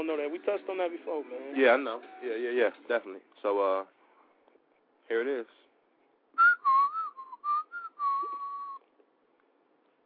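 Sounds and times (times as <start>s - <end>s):
speech: 0.0s - 4.0s, 5.1s - 5.6s
person whistling a tune: 6.4s - 8.8s.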